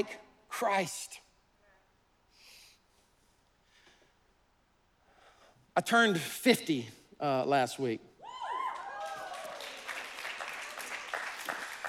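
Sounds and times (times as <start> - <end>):
speech: 0.0 - 1.2, 5.8 - 8.1
whoops from an audience: 8.2 - 9.9
audience clapping: 8.6 - 11.8.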